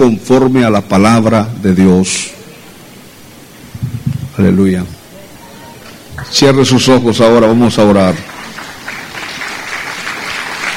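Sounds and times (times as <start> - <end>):
speech: 0.0 - 2.4, 4.4 - 5.0, 6.2 - 8.3
congregation applauding during a church service: 5.8 - 10.7.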